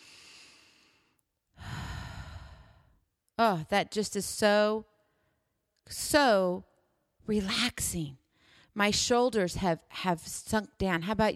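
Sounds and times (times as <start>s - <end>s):
slow deep breath during a relaxation exercise: 0.0s - 3.0s, 8.3s - 8.8s
speech: 3.4s - 4.9s, 5.9s - 8.2s, 8.8s - 11.3s.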